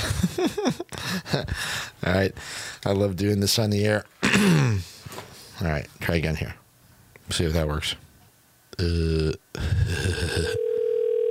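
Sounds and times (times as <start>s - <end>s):
speech: 0.4s - 6.6s, 7.3s - 8.0s, 8.8s - 10.7s
loud buzzy telephone line tone on an outgoing call: 10.5s - 11.2s
steady telephone ringback tone on an outgoing call to a cab driver: 10.6s - 11.2s.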